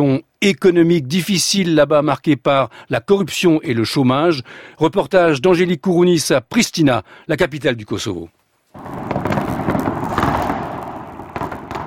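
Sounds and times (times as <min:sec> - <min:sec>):
speech: 0:00.0 - 0:09.0
fireworks bursting over a city: 0:08.7 - 0:11.8.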